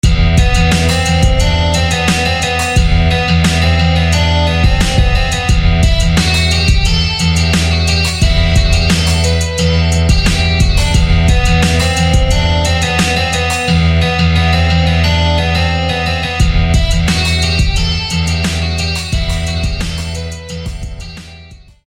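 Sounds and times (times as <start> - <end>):
rugged acoustic guitar: 0.0 - 21.5.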